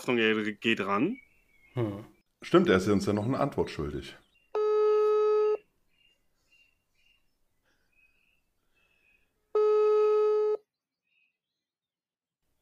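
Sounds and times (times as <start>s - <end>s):
speech: 0.0s - 1.2s, 1.8s - 4.2s
faint chirps: 0.9s - 2.2s, 5.9s - 9.4s
WhatsApp call ringing tone: 4.6s - 5.6s, 9.6s - 10.6s.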